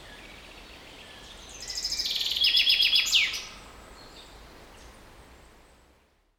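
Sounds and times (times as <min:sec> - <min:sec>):
common chaffinch Fringilla coelebs song: 0:00.0 - 0:04.9.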